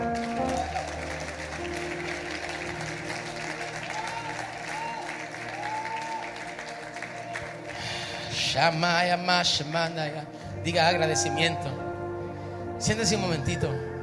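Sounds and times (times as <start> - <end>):
church audience clapping: 0.0 - 8.8
speech: 8.6 - 11.8, 12.8 - 13.9.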